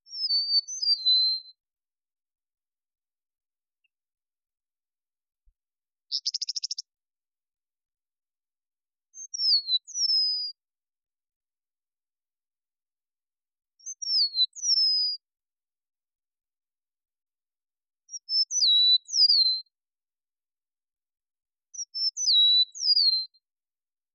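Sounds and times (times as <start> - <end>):
Eastern Meadowlark: 0.0 - 1.6, 6.0 - 7.0, 9.0 - 10.7, 13.7 - 15.3, 18.0 - 19.8, 21.6 - 23.4.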